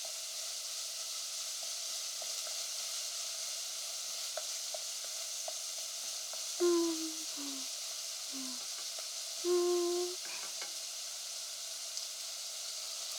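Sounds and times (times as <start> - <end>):
onions frying in a pan: 0.0 - 13.1.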